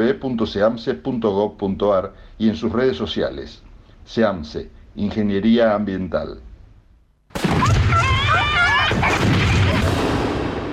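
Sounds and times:
speech: 0:00.0 - 0:06.5
holiday fireworks booming blasts: 0:07.3 - 0:10.7.

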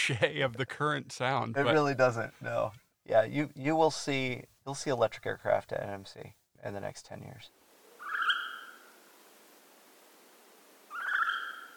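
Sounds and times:
speech: 0:00.0 - 0:07.6
hawk owl call used as a segment jingle: 0:08.0 - 0:09.0, 0:10.9 - 0:11.7.

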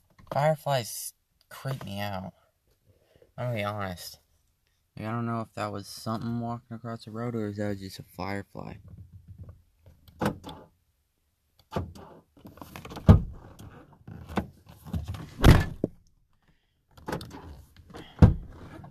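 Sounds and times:
speech: 0:00.4 - 0:02.4, 0:03.4 - 0:04.2, 0:05.0 - 0:09.0
car door being opened and shut: 0:08.9 - 0:10.7, 0:11.6 - 0:16.0, 0:17.0 - 0:18.9.

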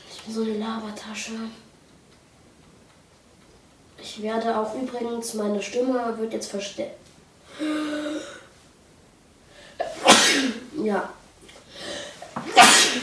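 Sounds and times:
speech: 0:00.2 - 0:01.7, 0:04.2 - 0:08.0, 0:10.8 - 0:11.2
loud sneeze: 0:09.8 - 0:10.7, 0:12.4 - 0:13.0.

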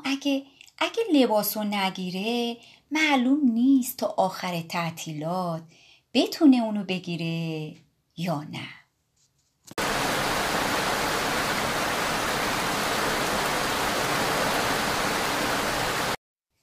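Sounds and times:
speech: 0:00.2 - 0:08.8
heavy rain pouring: 0:09.8 - 0:16.2.

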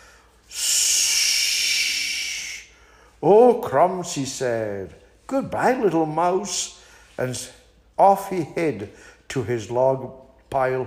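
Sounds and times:
voice imitating a snake hiss: 0:00.5 - 0:02.7
speech: 0:03.2 - 0:10.8.

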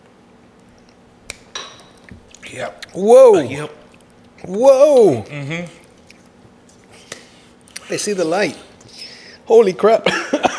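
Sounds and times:
shot glasses of Dominican rum clinking in a toast: 0:01.5 - 0:02.0
speech: 0:02.5 - 0:03.8, 0:04.4 - 0:05.8, 0:07.9 - 0:08.7, 0:09.5 - 0:10.2.

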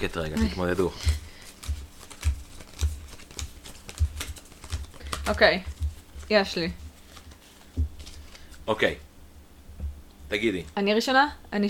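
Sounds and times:
speech: 0:00.0 - 0:01.2, 0:05.3 - 0:05.7, 0:06.3 - 0:06.8, 0:08.7 - 0:09.1, 0:10.3 - 0:11.6
playing cards being counted out during a card game: 0:00.0 - 0:08.6.

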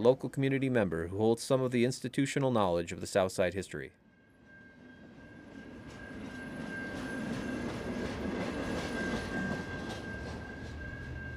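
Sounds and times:
speech: 0:00.0 - 0:04.1
train rumbling past at a railroad crossing: 0:04.0 - 0:11.3.

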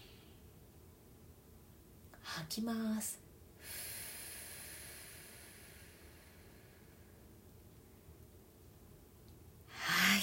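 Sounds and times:
speech: 0:02.4 - 0:03.9
slow breath in during a relaxation breathing exercise: 0:03.6 - 0:07.3.

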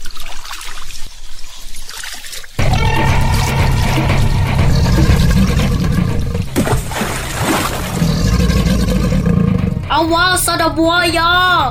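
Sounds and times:
softer trickling water: 0:00.0 - 0:02.6, 0:05.5 - 0:08.8
river water splashes and surges around a raft: 0:00.0 - 0:08.8
speech: 0:10.0 - 0:11.6.

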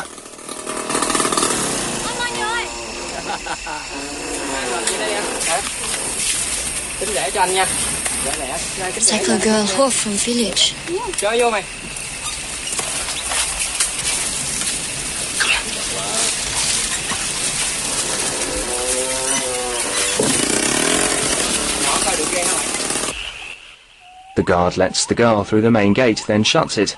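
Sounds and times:
small motor buzzing: 0:00.0 - 0:11.2, 0:12.0 - 0:23.2
hissing wash: 0:00.0 - 0:26.9
laughter: 0:02.9 - 0:05.4
speech: 0:07.0 - 0:11.8, 0:24.5 - 0:26.9.

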